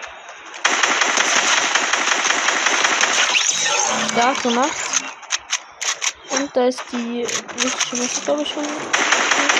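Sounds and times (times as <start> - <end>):
rapid automatic gunfire in a shooting video game: 0.6 - 4.3, 7.4 - 9.5
speech: 4.2 - 4.9, 6.3 - 9.5.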